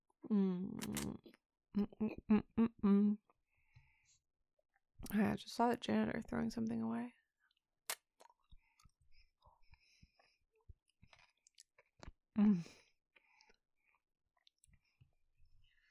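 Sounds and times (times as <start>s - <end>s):
speech: 0.3s - 3.2s, 5.2s - 7.2s, 12.4s - 12.8s
chewing crunchy food: 7.4s - 12.2s, 13.2s - 15.0s.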